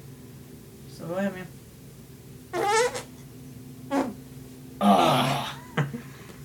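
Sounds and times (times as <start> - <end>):
speech: 1.0 - 1.6
series of squeaky, blurting and sputtering farts: 2.5 - 3.1, 3.9 - 4.2.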